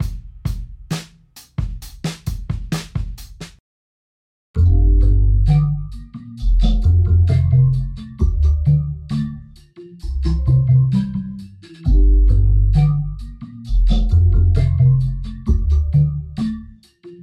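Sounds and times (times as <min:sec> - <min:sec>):
drum bassline: 0:00.0 - 0:03.6, 0:04.6 - 0:16.5.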